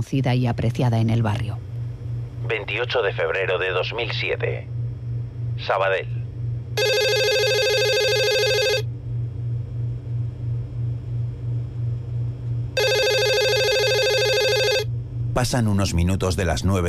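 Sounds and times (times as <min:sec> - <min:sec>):
speech: 0:00.0 - 0:01.7, 0:02.5 - 0:04.7, 0:05.6 - 0:06.2, 0:15.4 - 0:16.8
low pulsing hum: 0:00.0 - 0:16.8
telephone ringing with an incoming call: 0:06.8 - 0:08.8, 0:12.8 - 0:14.9.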